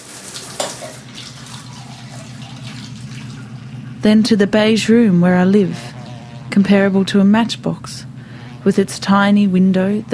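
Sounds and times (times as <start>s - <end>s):
water running from a shower in a shower block: 0.0s - 4.0s
speech: 4.0s - 5.9s, 6.6s - 10.1s.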